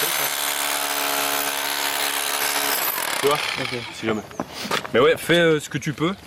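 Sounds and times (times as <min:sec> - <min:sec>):
hammer drill running: 0:00.0 - 0:04.0
speech: 0:03.2 - 0:06.2.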